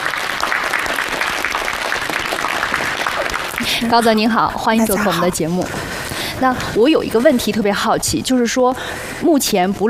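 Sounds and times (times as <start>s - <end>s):
crowd clapping: 0.0s - 5.3s
speech: 3.8s - 9.8s.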